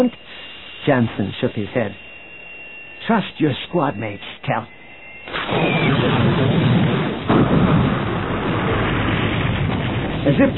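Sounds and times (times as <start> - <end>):
speech: 0.0 - 0.2, 0.8 - 2.1, 3.1 - 4.8, 10.2 - 10.5
laser blast striking a gun emplacement at a spaceport, explosion roar: 5.3 - 10.5.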